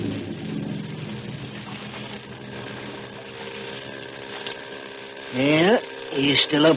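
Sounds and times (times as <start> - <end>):
distant motorboat engine droning in a foggy channel: 0.0 - 6.7
speech: 5.3 - 6.7.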